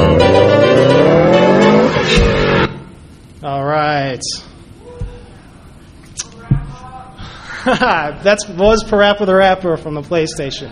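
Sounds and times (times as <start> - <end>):
car engine droning: 0.0 - 3.3
laughter: 7.2 - 8.2
speech: 7.6 - 10.6.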